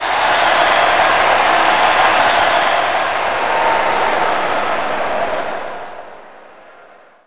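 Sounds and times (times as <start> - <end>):
big crowd: 0.0 - 7.2.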